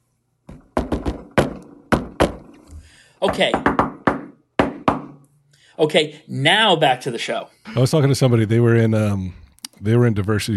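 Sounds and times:
secret knock pattern on a door: 0:00.5 - 0:02.5, 0:03.2 - 0:05.2
speech: 0:03.2 - 0:03.9, 0:05.8 - 0:10.5.

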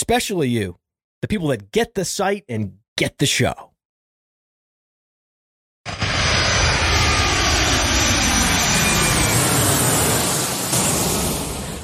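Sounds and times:
speech: 0:00.0 - 0:03.7
airplane taking off with engine roar and high whine: 0:05.9 - 0:11.8.

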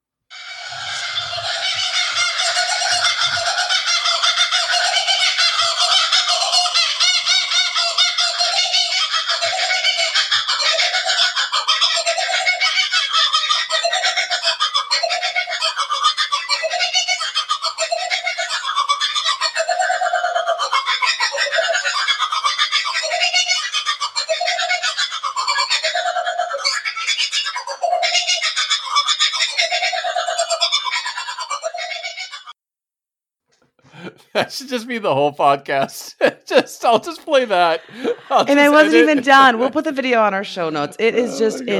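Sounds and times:
two kookaburras cackling in a duet on a balcony in Australia: 0:00.3 - 0:32.5, 0:35.8 - 0:41.7
speech: 0:34.6 - 0:41.7.

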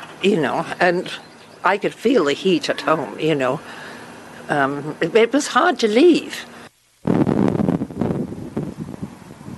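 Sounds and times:
speech: 0:00.2 - 0:03.8, 0:04.5 - 0:07.2
strong wind gusts of up to 40 kilometres an hour at a wildfire: 0:07.0 - 0:09.5.

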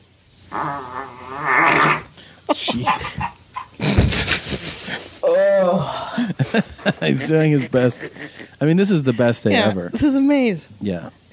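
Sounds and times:
speech: 0:00.5 - 0:01.5, 0:02.5 - 0:03.3, 0:05.3 - 0:11.2
fart: 0:00.5 - 0:02.1
laughter: 0:02.5 - 0:05.2, 0:06.1 - 0:09.6.

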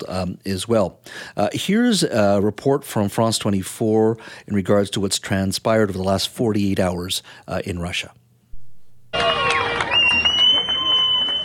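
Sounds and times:
speech: 0:00.0 - 0:08.2
crowd of residents cheering and applauding in Rostov-on-Don Russia: 0:09.1 - 0:11.4.

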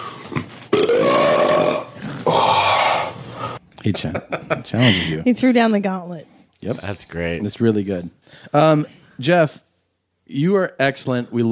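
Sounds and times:
loud raspy fart: 0:00.2 - 0:03.1
speech: 0:03.8 - 0:09.6, 0:10.3 - 0:11.5.

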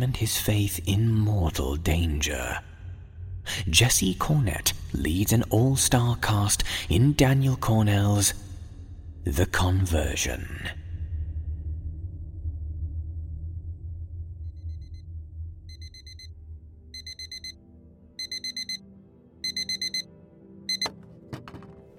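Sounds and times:
speech: 0:00.0 - 0:02.7, 0:03.5 - 0:08.4, 0:09.2 - 0:10.8
low rumbling background: 0:00.0 - 0:19.3
alarm clock beeping high-pitched tones: 0:15.7 - 0:16.4, 0:17.0 - 0:17.6, 0:18.2 - 0:21.1.

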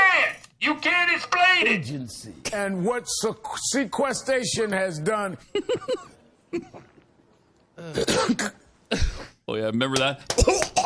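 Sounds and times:
speech: 0:00.6 - 0:06.9, 0:07.8 - 0:10.8
man coughing hoarsely: 0:07.8 - 0:09.4, 0:10.3 - 0:10.8.

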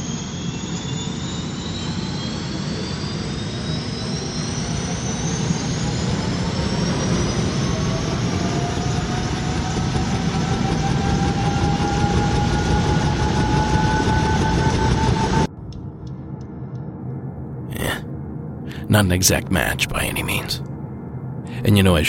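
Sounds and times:
helicopter engine roaring while powering up: 0:00.0 - 0:15.5
high helicopter turbine whine climbing in pitch: 0:00.0 - 0:22.0
speech: 0:19.0 - 0:20.7, 0:21.6 - 0:22.0.

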